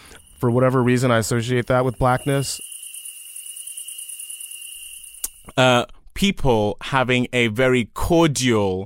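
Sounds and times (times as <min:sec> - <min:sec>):
insects trilling on a summer night: 0:00.0 - 0:05.6
speech: 0:00.4 - 0:02.7, 0:05.5 - 0:08.8.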